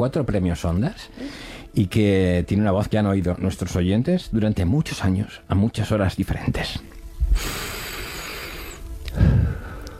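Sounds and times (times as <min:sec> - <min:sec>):
speech: 0:00.0 - 0:07.7
man taking a deep breath: 0:01.2 - 0:01.7, 0:07.3 - 0:09.9.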